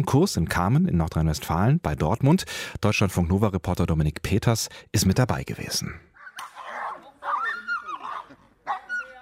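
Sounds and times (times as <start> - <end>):
speech: 0.0 - 6.1
German shepherd barking and snarling in bite training: 6.2 - 9.2
whip cracks in the air: 6.4 - 6.7.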